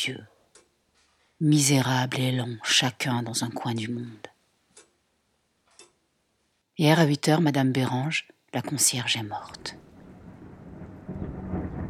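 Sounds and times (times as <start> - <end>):
speech: 0.0 - 0.3, 1.4 - 4.3, 6.8 - 9.9
thunder rumbling during a great storm at night: 9.6 - 11.8
steady rain during a great storm at night: 9.7 - 11.8.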